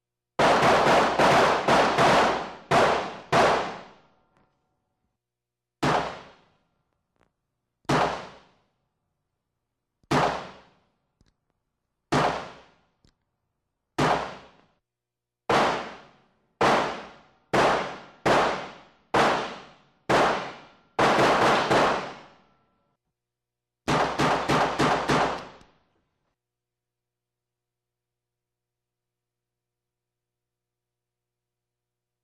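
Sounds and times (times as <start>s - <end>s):
two pistols firing in a room: 0.4s - 4.0s, 5.8s - 6.5s, 7.9s - 8.6s, 10.1s - 10.8s, 12.1s - 12.8s, 14.0s - 14.6s, 15.5s - 22.4s, 23.9s - 25.7s.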